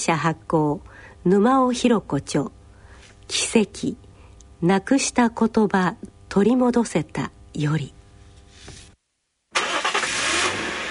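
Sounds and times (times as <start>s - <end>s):
speech: 0.0s - 2.6s, 3.3s - 4.0s, 4.6s - 8.0s
car engine droning while driving: 9.6s - 10.8s.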